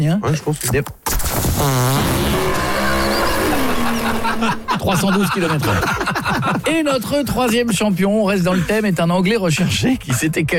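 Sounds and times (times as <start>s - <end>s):
speech: 0.0s - 1.0s, 1.6s - 2.3s, 4.8s - 10.5s
dragster race car engine roaring and revving: 1.8s - 5.1s
laughter: 2.8s - 10.3s.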